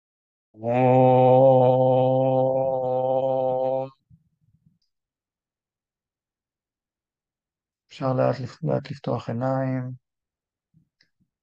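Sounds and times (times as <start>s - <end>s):
speech: 0.6s - 1.0s, 8.0s - 10.0s
single low voice chanting Om at end of meditation: 0.6s - 4.0s.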